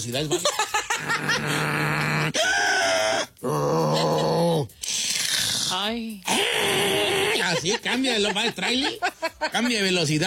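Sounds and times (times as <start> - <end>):
speech: 0.0 - 2.7, 5.8 - 7.0, 7.6 - 10.2
laughter: 0.3 - 2.3, 7.0 - 9.7
person imitating pig-like snoring snorts: 1.0 - 2.4, 3.1 - 7.4.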